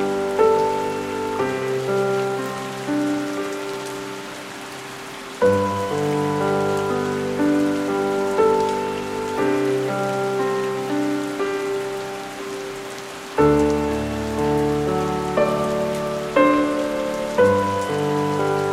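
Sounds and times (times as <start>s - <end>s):
soft piano playing slow sustained chords: 0.0s - 18.7s
steady quiet hiss of rain: 0.0s - 18.7s.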